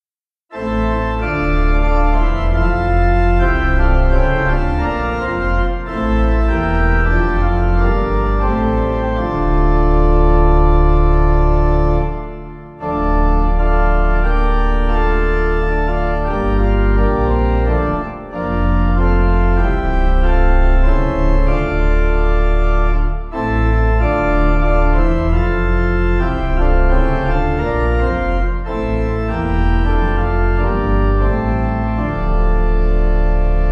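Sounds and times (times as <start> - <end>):
organ: 0.5 - 33.7.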